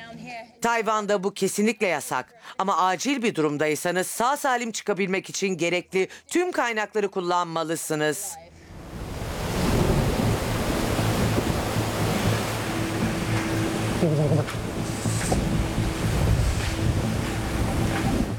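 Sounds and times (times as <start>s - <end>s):
speech: 0.2s - 8.5s
dense rain falling outside a cave at nightfall: 8.9s - 18.3s.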